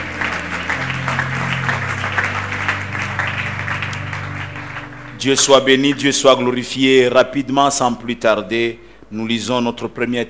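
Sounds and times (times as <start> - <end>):
church congregation applauding in praise during a service: 0.0 - 7.0
sustained low musical tones: 0.0 - 8.2
speech: 5.2 - 10.2.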